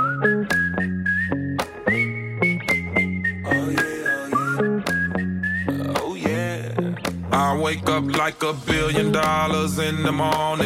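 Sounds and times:
whistled melody: 0.0 - 6.2
intro of a rap song: 3.4 - 5.0, 5.6 - 10.6
speech: 7.7 - 10.6.

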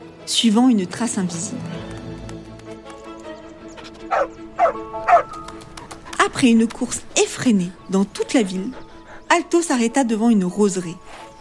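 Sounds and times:
speech: 0.3 - 2.0, 6.4 - 11.3
dog barking: 3.8 - 5.4.

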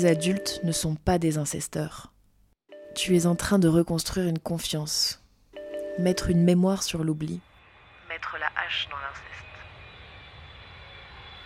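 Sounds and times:
speech: 0.0 - 2.1, 3.0 - 5.2, 6.0 - 7.5, 8.2 - 9.3
airplane engine drone in the cabin: 7.6 - 11.4.

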